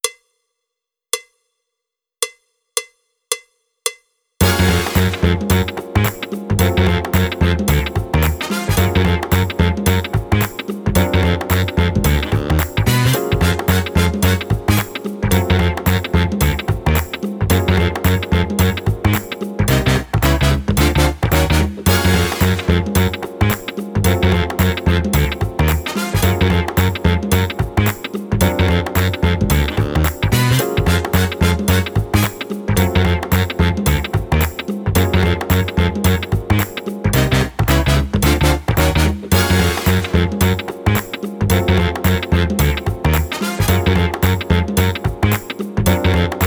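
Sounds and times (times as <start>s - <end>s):
drumless funk groove loop: 4.4s - 46.4s.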